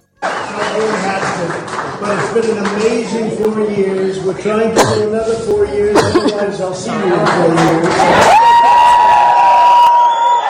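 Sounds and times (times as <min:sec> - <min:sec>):
office staff cheering and clapping in a White House office: 0:00.0 - 0:04.2, 0:06.9 - 0:10.4
speech: 0:00.8 - 0:08.5.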